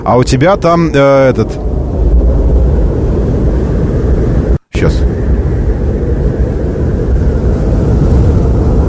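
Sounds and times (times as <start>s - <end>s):
speech: 0.0s - 1.8s, 4.8s - 5.2s
snowy-day ambience low rumble played inside a car: 0.0s - 8.8s.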